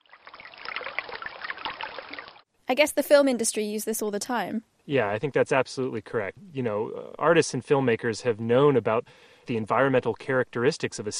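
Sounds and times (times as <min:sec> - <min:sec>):
water trickling and splashing in small droplets: 0:00.0 - 0:02.5
speech: 0:02.7 - 0:11.1.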